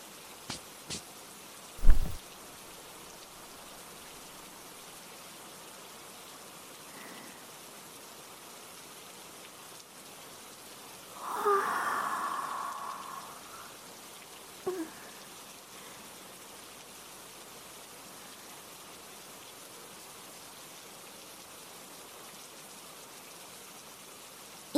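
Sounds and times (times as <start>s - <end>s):
steady rain pattering on surfaces: 0.0s - 24.7s
water splashing: 1.8s - 2.2s
sharper drips and knocks: 11.1s - 16.0s.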